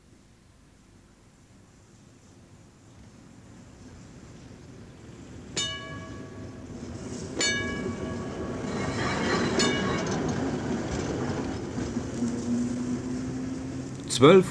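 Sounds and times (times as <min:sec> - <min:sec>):
rail rumble of a tram railcar moving slowly out of a city tram depot: 0:01.3 - 0:14.4
thin metallic tram wheel squeal: 0:07.4 - 0:10.6.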